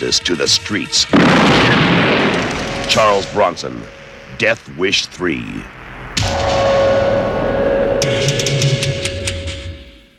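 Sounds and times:
speech: 0.0s - 6.4s
droning tone: 0.0s - 9.4s
dramatic movie trailer soundtrack: 0.0s - 10.1s
sudden blast: 1.1s - 4.4s, 5.7s - 9.1s.

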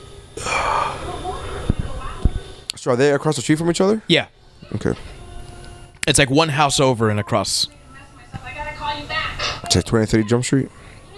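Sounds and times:
heavy breathy exhaling: 0.4s - 2.6s, 10.7s - 11.1s
speech: 2.8s - 5.1s, 6.1s - 8.5s, 9.7s - 10.8s.

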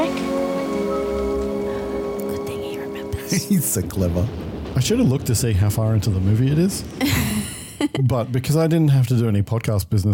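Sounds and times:
sustained low tonal drone: 0.0s - 3.9s
steady rain falling: 0.0s - 9.2s
speech: 3.3s - 7.4s, 8.0s - 10.1s.

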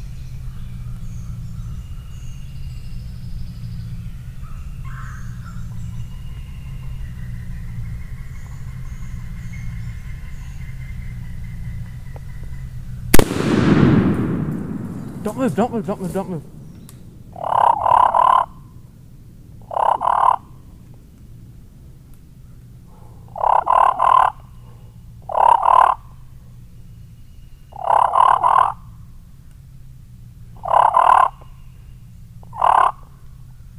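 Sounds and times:
low steady rumble: 0.0s - 33.7s
hen calling in short harsh bursts: 13.2s - 20.8s, 23.0s - 29.2s, 30.5s - 33.7s
speech: 15.3s - 16.5s.

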